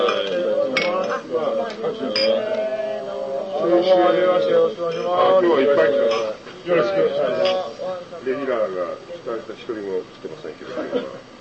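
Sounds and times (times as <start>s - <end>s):
glasses clinking in a toast: 0.0s - 1.2s, 2.0s - 2.6s, 6.0s - 6.4s
speech: 1.4s - 2.7s, 3.6s - 11.3s.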